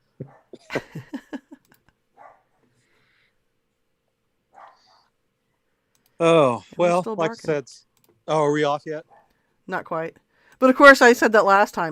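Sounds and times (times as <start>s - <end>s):
low hum: 0.0s - 11.9s
dogs barking: 2.2s - 2.5s, 4.5s - 5.1s
dog yelping: 4.6s - 5.1s
speech: 6.2s - 9.1s, 9.7s - 11.9s.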